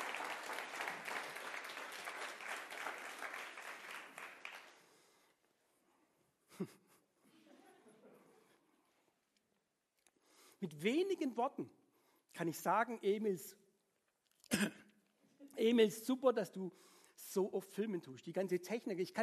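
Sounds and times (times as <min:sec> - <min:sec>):
audience applause: 0:00.0 - 0:05.0
speech: 0:06.6 - 0:06.8, 0:10.6 - 0:11.8, 0:12.4 - 0:13.6, 0:14.6 - 0:14.8, 0:15.6 - 0:19.2.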